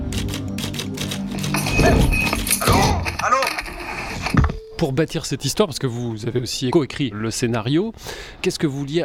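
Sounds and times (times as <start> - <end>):
mechanical typewriter keys clacking: 0.1 - 3.7
speech: 4.8 - 9.0.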